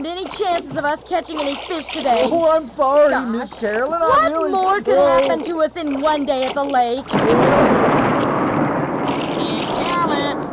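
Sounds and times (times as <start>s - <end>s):
speech: 0.0s - 8.0s
thunder rumbling from a storm over a lake: 7.0s - 10.5s.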